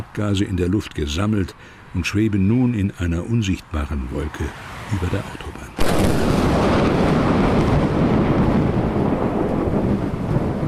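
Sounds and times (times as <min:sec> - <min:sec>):
speech: 0:00.1 - 0:06.4
heavy rain falling during a thunderstorm: 0:05.8 - 0:10.6
low rumbling thunder in a storm: 0:05.8 - 0:10.6.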